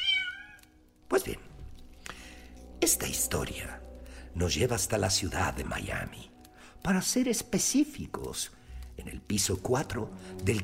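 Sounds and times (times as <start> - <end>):
impatient cat meowing insistently: 0.0 - 0.8
speech: 1.2 - 1.5, 2.8 - 10.6.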